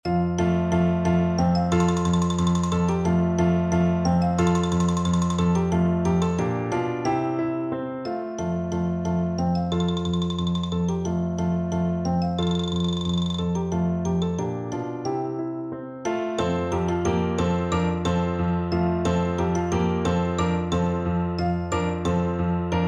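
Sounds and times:
xylophone: 0.1 - 22.8.

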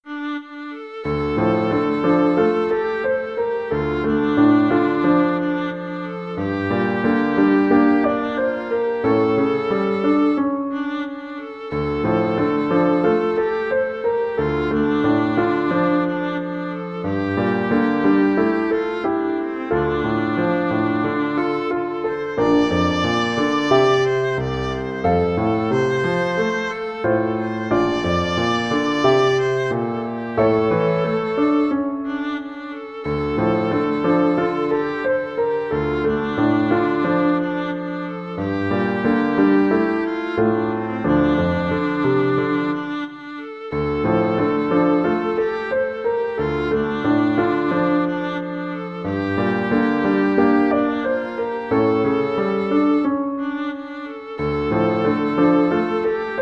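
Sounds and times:
viola playing a folk tune: 0.0 - 56.3.

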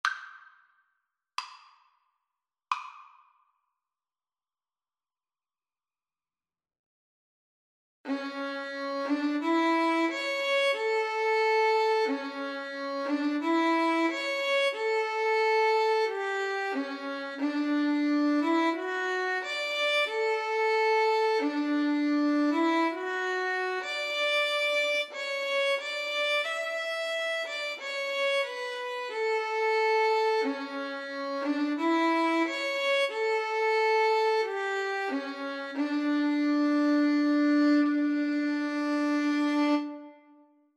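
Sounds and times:
yodel-style violin duet: 8.1 - 40.4.

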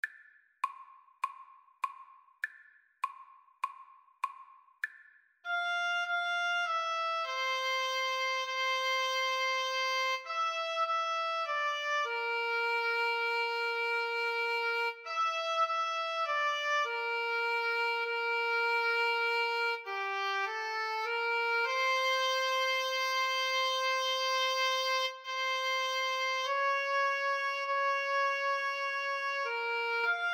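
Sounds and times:
oboe duet: 5.5 - 30.3.

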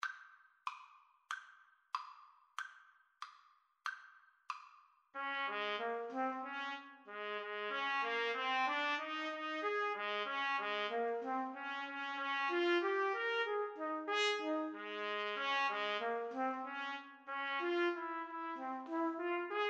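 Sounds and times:
trumpet melody: 5.2 - 19.6.

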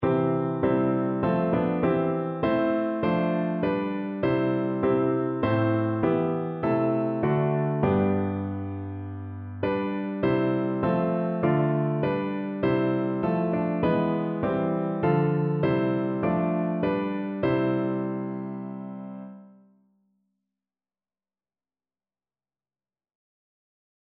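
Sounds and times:
hymn played on piano: 0.0 - 19.6.

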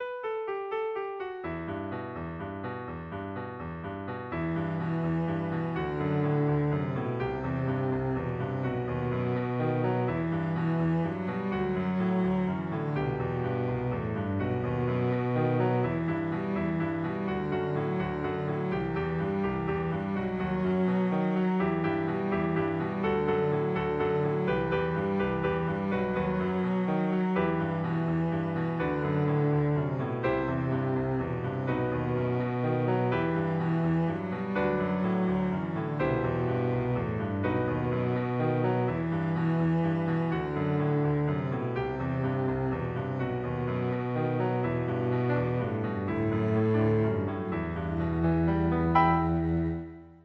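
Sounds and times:
Spanish violin: 0.8 - 50.2
cello: 1.2 - 50.2.

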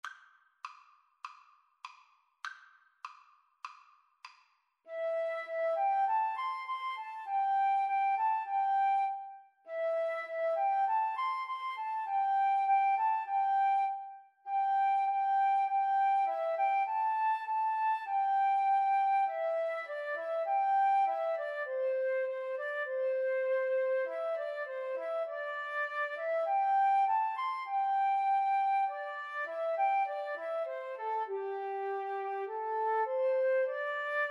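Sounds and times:
flute duet: 4.9 - 34.2.

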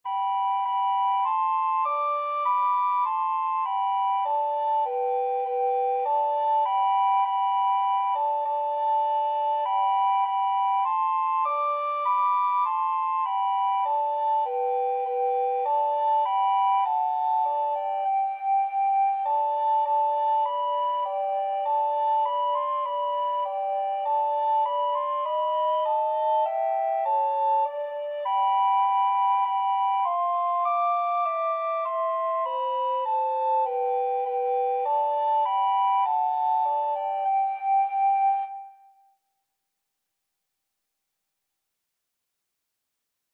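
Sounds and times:
recorder duet: 0.1 - 38.8.

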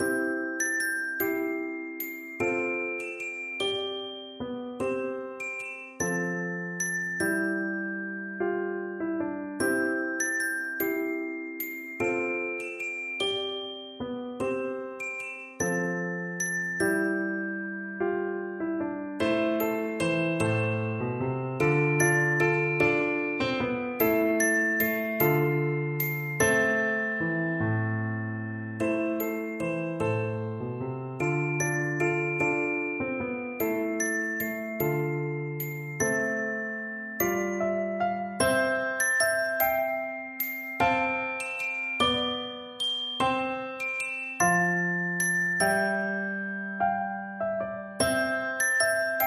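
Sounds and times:
xylophone melody: 0.0 - 18.6, 19.2 - 30.6, 31.2 - 49.2.

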